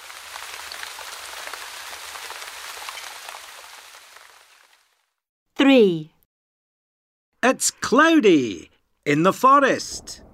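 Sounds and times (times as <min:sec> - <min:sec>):
rain falling at the beach: 0:00.0 - 0:05.1
speech: 0:05.7 - 0:06.1, 0:07.4 - 0:10.2.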